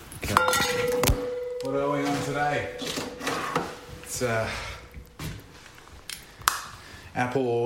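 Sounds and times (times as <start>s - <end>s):
cat food bowl scraping and rubbing as it is picked up: 0.4s - 5.0s
speech: 1.8s - 3.0s, 4.2s - 4.7s, 7.2s - 7.6s.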